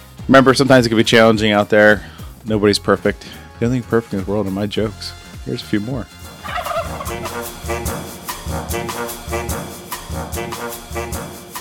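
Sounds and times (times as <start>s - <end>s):
speech: 0.3s - 6.2s
turkeys gobbling: 6.3s - 8.0s.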